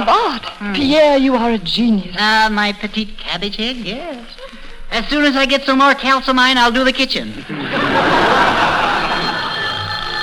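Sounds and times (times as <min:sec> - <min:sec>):
laughter: 0:00.0 - 0:00.9, 0:04.4 - 0:04.9, 0:07.3 - 0:10.2
speech: 0:00.3 - 0:08.7
French telephone bell ringing: 0:08.1 - 0:10.2.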